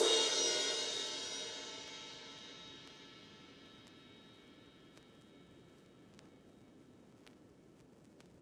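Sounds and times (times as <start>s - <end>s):
vinyl ride cymbal: 0.0s - 6.4s.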